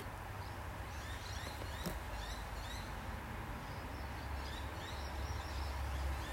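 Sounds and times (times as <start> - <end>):
small birds chirping and twittering: 0.0 - 6.3
steady low rumble of traffic: 0.0 - 6.3.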